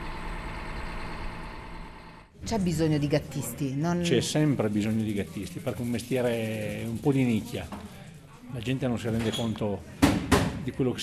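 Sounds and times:
snow groomer engine running as its tiller starts and tracks move: 0.0s - 2.3s
speech: 2.4s - 7.9s, 8.5s - 10.0s, 10.6s - 11.0s.

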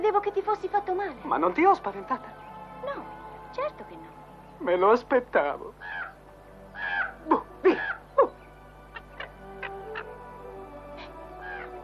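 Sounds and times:
speech: 0.0s - 6.1s
crow cawing harshly: 5.8s - 8.2s, 11.4s - 11.8s.

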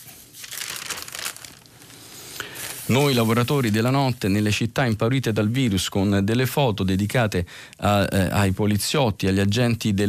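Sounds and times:
newspaper pages being leafed through: 0.0s - 4.2s
speech: 2.9s - 10.0s.

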